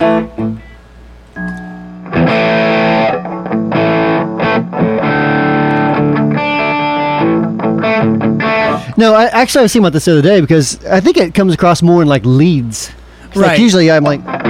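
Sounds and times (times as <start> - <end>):
soft instrument tones through a distortion effects pedal: 0.0 - 9.0
speech: 9.0 - 14.4.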